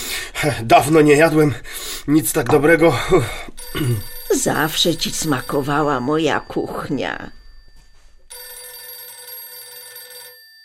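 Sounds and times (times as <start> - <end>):
speech: 0.4 - 7.4
telephone bell ringing: 3.6 - 10.6.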